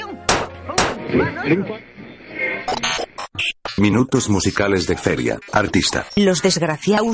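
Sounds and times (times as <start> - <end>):
DVD player being banged: 0.3 - 1.0
speech: 1.1 - 1.9, 3.8 - 7.1
garbled voice-like sound from malfunctioning DVD player: 2.6 - 6.8.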